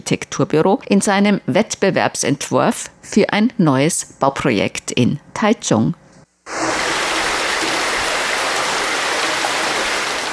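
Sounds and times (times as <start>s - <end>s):
speech: 0.0s - 6.6s
water splashing like a babbling stream: 6.5s - 10.3s.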